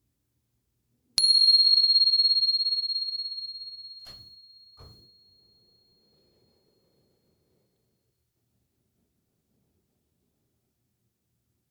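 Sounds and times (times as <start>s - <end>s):
meditation bell struck at the start of a meditation practice: 1.2s - 5.4s.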